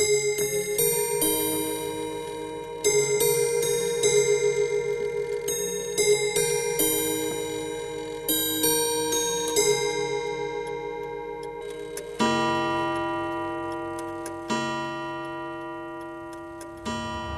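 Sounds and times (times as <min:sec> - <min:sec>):
old mechanical clock playing a chime melody: 0:00.0 - 0:17.3
old mechanical clock striking the hour with resonant bell tones: 0:11.4 - 0:17.3.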